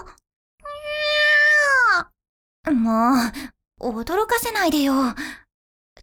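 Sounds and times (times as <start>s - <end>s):
cat meowing inside a restaurant: 0.6s - 2.1s
speech: 2.9s - 5.4s.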